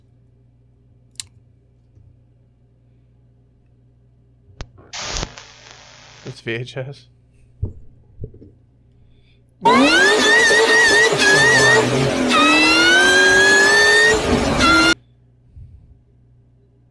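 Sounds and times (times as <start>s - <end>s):
faint hum: 0.0s - 9.7s, 14.6s - 16.9s
speech: 6.2s - 7.2s
supercharged car engine revving with high whine: 9.6s - 15.0s.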